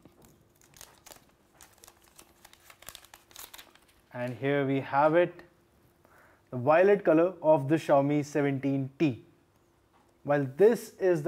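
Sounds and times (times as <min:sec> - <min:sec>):
protective plastic film peeled off new phone packaging: 0:00.0 - 0:04.1
speech: 0:04.2 - 0:05.5, 0:06.5 - 0:09.3, 0:10.2 - 0:11.2.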